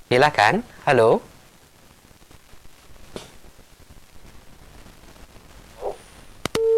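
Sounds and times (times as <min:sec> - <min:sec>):
faint crackling telephone line hiss: 0:00.0 - 0:06.7
speech: 0:00.1 - 0:01.3
loud steady telephone line tone from a call that failed to connect: 0:06.6 - 0:06.7.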